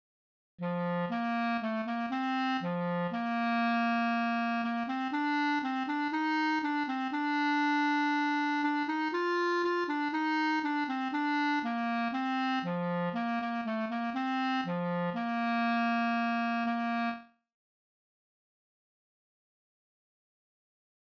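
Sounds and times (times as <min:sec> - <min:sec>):
clarinet playing a caprice: 0:00.6 - 0:17.3.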